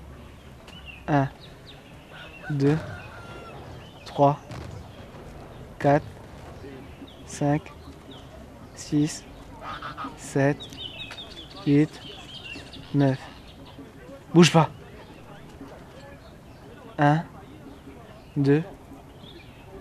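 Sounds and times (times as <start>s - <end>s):
faint murmuring background: 0.0s - 19.7s
speech: 1.1s - 1.5s, 2.5s - 3.0s, 4.2s - 4.6s, 5.8s - 6.1s, 7.3s - 7.8s, 8.8s - 9.3s, 10.2s - 10.8s, 11.6s - 12.1s, 12.9s - 13.3s, 14.3s - 14.8s, 17.0s - 17.3s, 18.4s - 18.8s
duck quacking: 9.6s - 10.2s.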